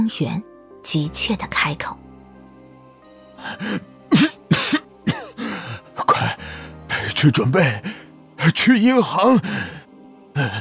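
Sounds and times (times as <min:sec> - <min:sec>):
speech: 0:00.0 - 0:02.0, 0:03.4 - 0:04.3, 0:07.2 - 0:09.8, 0:10.4 - 0:10.5
elderly man coughing into a handkerchief held over his mouth: 0:04.1 - 0:05.4.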